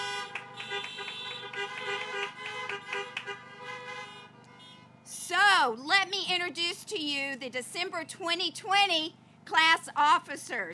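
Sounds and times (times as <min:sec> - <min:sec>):
parked car horn honking at a graduation ceremony: 0:00.0 - 0:05.0
speech: 0:05.6 - 0:10.7.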